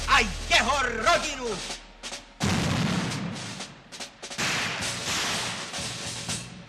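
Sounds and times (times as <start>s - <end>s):
speech: 0.2s - 1.8s
gunfire in Sarajevo: 2.4s - 6.0s.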